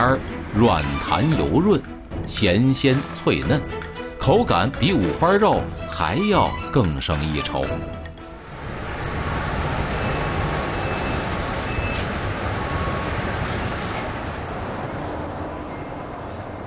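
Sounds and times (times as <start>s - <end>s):
speech: 0.0s - 8.0s
high-speed train rumbling while arriving at a station: 0.0s - 16.6s
brief beeping tones: 9.0s - 13.2s.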